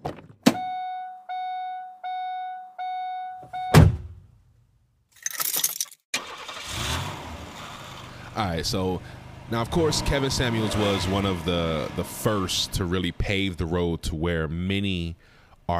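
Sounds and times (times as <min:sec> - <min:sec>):
car warning chime: 0:00.6 - 0:03.8
car door slamming: 0:03.7 - 0:04.2
car starter cranking: 0:06.2 - 0:08.1
car engine rumbling: 0:06.2 - 0:15.0
speech: 0:08.4 - 0:15.7.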